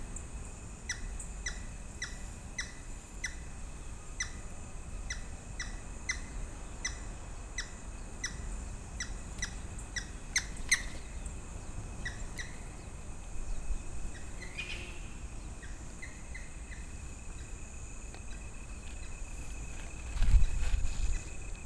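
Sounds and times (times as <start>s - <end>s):
steady high whine: 0.0s - 21.6s
grey-headed woodpecker Picus canus calls: 0.9s - 3.5s, 4.2s - 4.4s, 5.1s - 11.3s, 12.0s - 12.9s, 13.5s - 17.6s.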